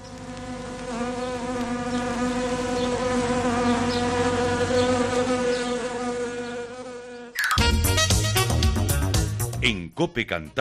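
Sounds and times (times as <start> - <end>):
swarm of wasps buzzing: 0.0 - 9.3
music: 7.4 - 10.6
speech: 10.0 - 10.6.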